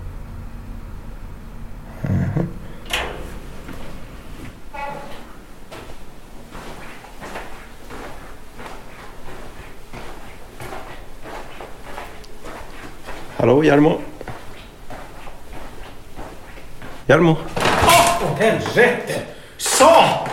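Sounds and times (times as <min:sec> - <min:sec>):
office door creaking open: 0:02.0 - 0:05.8, 0:17.5 - 0:18.8
soft thuds and shuffling movement: 0:02.8 - 0:19.1
speech: 0:13.4 - 0:14.1, 0:17.1 - 0:17.6, 0:18.2 - 0:20.3.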